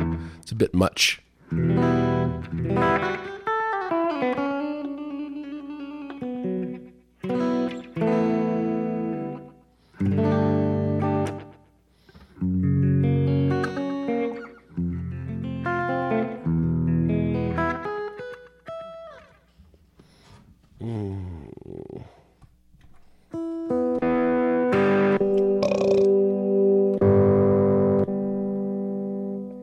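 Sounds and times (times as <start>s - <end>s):
speech: 0.4s - 1.8s
compressed crunchy distorted electric guitar with Comp Crunch lead tone: 1.5s - 9.4s, 10.0s - 11.6s, 12.4s - 18.9s, 23.4s - 29.6s.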